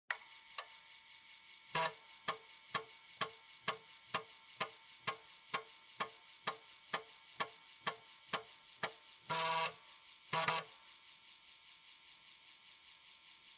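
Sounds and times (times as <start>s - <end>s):
floppy disk drive operating noise: 0.2s - 10.8s.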